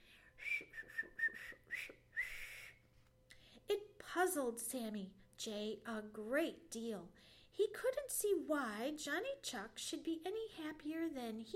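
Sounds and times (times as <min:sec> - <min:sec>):
bright chirpy whistling phrase: 0:00.4 - 0:02.8
speech: 0:00.6 - 0:02.0, 0:03.7 - 0:11.5.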